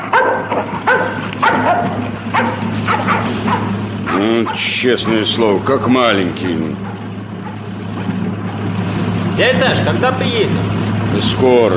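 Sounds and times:
dog barking with a yippy edge: 0.0s - 4.8s, 6.7s - 7.7s
steady low engine-like hum: 0.0s - 11.7s
speech: 4.2s - 6.9s, 9.4s - 11.7s.

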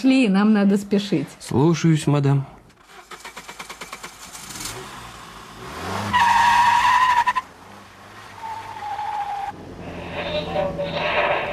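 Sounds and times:
speech: 0.0s - 2.6s
car engine revving: 2.9s - 11.5s
car tires screeching: 2.9s - 11.5s.

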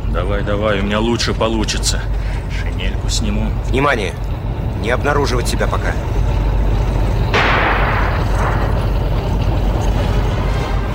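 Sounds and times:
low rumble of battle noise: 0.0s - 10.9s
speech: 0.2s - 6.2s
anti-tank rifle firing in a wartime radio drama: 7.4s - 8.7s.

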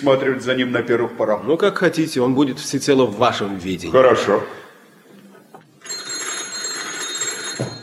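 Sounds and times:
speech: 0.0s - 4.6s
telephone bell ringing: 5.8s - 7.8s.

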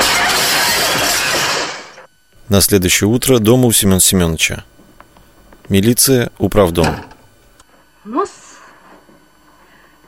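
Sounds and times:
window pane glass shattering from a chair blow: 0.0s - 2.0s
speech: 2.5s - 4.8s, 5.7s - 7.1s, 8.0s - 8.4s.

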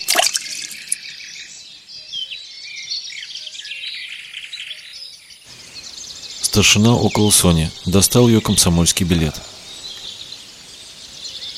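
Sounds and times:
knife thrown into water splashing: 0.0s - 1.0s
insects chirping outdoors: 0.0s - 11.5s
speech: 6.6s - 9.6s.

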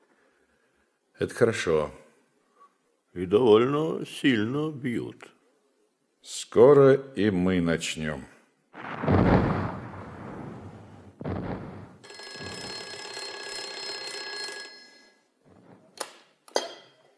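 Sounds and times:
speech: 1.2s - 2.0s, 3.2s - 5.4s, 6.2s - 9.4s
heavy thuds: 8.8s - 12.0s
field telephone ringing with a buzzing bell: 12.0s - 15.4s.

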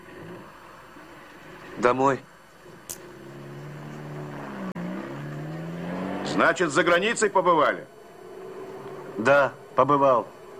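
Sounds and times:
taxi car engine humming while driving: 0.0s - 10.5s
speech: 1.8s - 2.3s, 6.4s - 8.0s, 9.2s - 10.4s.

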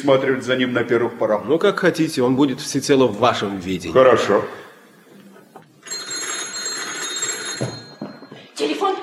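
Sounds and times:
speech: 0.0s - 4.6s
telephone ringing with a metallic bell tone: 5.8s - 8.6s.

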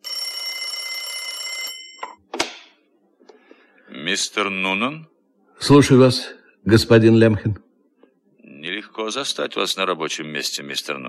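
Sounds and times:
old-fashioned telephone bell ringing: 0.0s - 2.3s
speech: 4.1s - 7.6s, 9.1s - 11.0s.

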